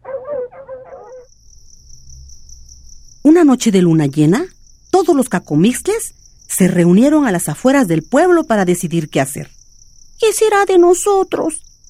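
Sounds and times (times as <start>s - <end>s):
fierce dogs barking: 0.0s - 1.3s
crickets chirping: 0.0s - 11.8s
speech: 3.4s - 9.6s, 10.2s - 11.6s.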